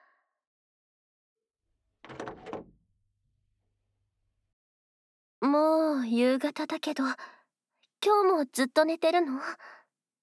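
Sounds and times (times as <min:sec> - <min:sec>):
door being opened: 0:02.0 - 0:02.8
speech: 0:05.5 - 0:07.4, 0:08.0 - 0:09.8.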